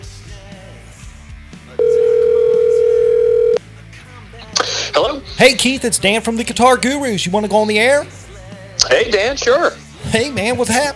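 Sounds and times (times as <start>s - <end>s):
ringback tone on an outgoing phone call: 1.8s - 3.6s
speech: 5.4s - 8.2s, 8.9s - 10.9s.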